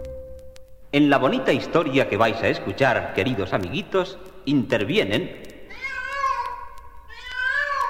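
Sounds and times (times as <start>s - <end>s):
speech: 0.9s - 5.5s
grumpy shaggy cat meowing: 5.7s - 7.8s.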